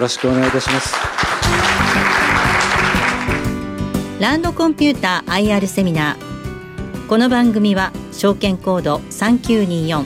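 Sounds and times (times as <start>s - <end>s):
speech: 0.0s - 1.8s, 4.2s - 6.3s, 7.1s - 10.0s
audience applause at a corporate investor-relations seminar: 0.0s - 3.6s.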